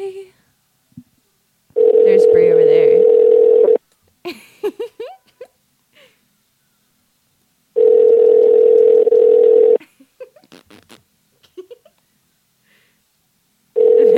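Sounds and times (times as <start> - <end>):
telephone ringback tone: 1.8 - 3.8, 7.8 - 9.8, 13.8 - 14.1.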